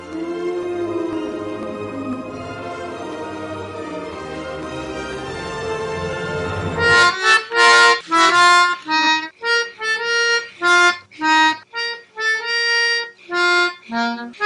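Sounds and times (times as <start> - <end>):
melodica: 0.0 - 14.4.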